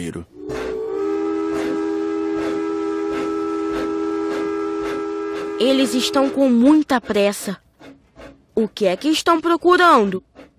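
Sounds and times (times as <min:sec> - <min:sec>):
speech: 0:00.0 - 0:00.6, 0:05.6 - 0:07.6, 0:08.6 - 0:10.5
steam train whistle: 0:00.3 - 0:06.9.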